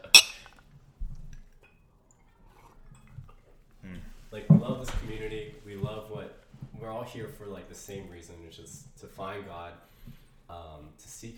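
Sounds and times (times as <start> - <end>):
glasses clinking in a toast: 0.0 - 0.5
speech: 4.3 - 11.3.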